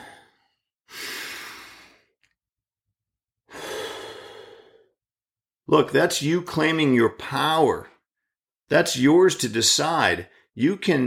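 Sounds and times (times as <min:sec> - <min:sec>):
person taking deep slow breaths during a guided breathing exercise: 0:00.0 - 0:02.2, 0:03.5 - 0:05.0
speech: 0:05.7 - 0:07.9, 0:08.7 - 0:11.0.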